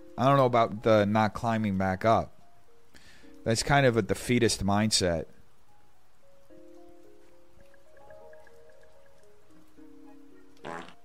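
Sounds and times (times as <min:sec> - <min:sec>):
speech: 0:00.2 - 0:02.4, 0:03.4 - 0:05.4
buzzy fart: 0:10.6 - 0:11.0.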